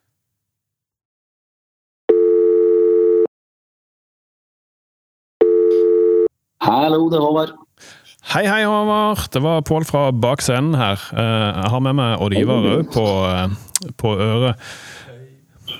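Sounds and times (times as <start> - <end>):
ringback tones during an outgoing phone call: 2.1 - 3.3, 5.4 - 6.3
speech: 6.8 - 15.2.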